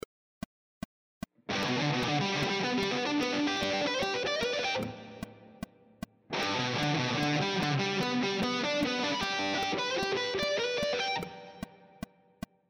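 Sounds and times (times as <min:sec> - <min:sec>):
guitar triad arpeggio sequences: 0:01.5 - 0:05.6, 0:06.3 - 0:12.0.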